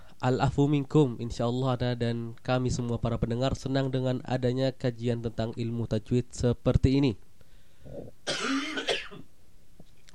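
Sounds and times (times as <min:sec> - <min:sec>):
speech: 0:00.2 - 0:07.2, 0:07.8 - 0:09.2
soft breathy sounds of a caller on a phone line: 0:07.4 - 0:08.2
caller coughing on a phone line: 0:07.9 - 0:09.3.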